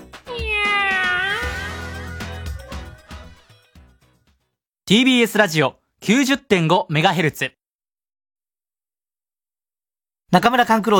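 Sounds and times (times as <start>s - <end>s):
cat meowing: 0.3s - 2.8s
speech: 4.9s - 7.6s, 10.3s - 10.9s.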